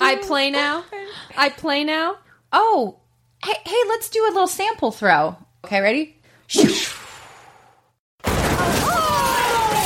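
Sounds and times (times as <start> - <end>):
speech: 0.1 - 7.0
clattering debris with a faint ringing tone: 8.2 - 9.8
trophy smashed by a thrown football: 8.2 - 9.8.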